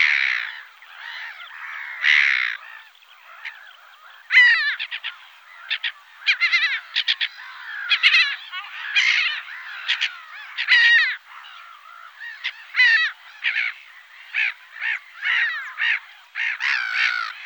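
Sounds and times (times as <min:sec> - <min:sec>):
Black-headed gull giving harsh grating calls: 0:00.0 - 0:17.4.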